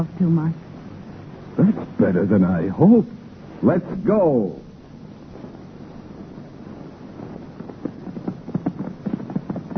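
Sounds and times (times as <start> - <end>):
speech: 0.0 - 0.6, 1.6 - 4.7
horses galloping: 7.6 - 9.7.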